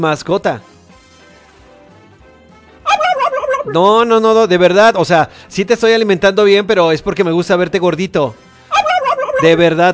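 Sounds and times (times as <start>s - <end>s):
speech: 0.0s - 0.7s, 3.6s - 8.4s, 9.4s - 9.9s
pet turkey gobbling: 2.8s - 4.0s, 8.7s - 9.6s.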